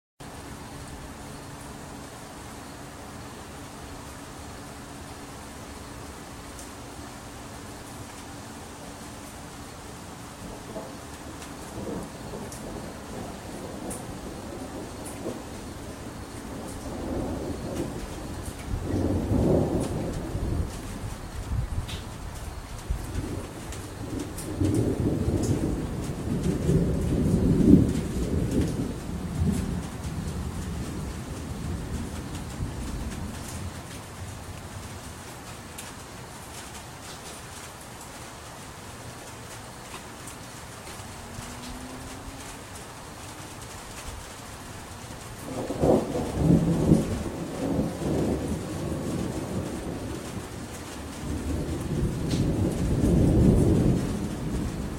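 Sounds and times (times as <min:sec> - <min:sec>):
August thunderstorm: 0:10.0 - 0:38.1, 0:39.4 - 0:54.9.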